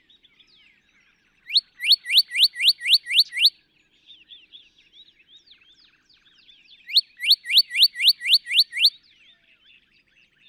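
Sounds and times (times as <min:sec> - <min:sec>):
Northern cardinal song of rising whistled notes: 0:01.5 - 0:03.5, 0:06.9 - 0:09.0.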